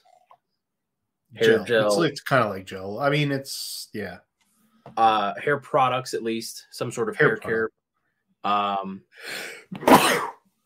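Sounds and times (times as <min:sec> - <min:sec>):
speech: 0:01.3 - 0:04.3, 0:04.9 - 0:07.8, 0:08.4 - 0:10.3
sneeze: 0:09.8 - 0:10.4.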